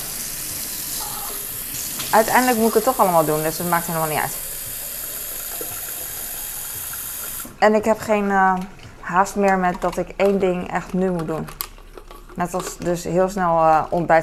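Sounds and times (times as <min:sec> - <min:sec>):
tap water filling a bottle: 0:00.0 - 0:07.6
speech: 0:02.1 - 0:04.4, 0:07.6 - 0:11.6, 0:12.4 - 0:14.2.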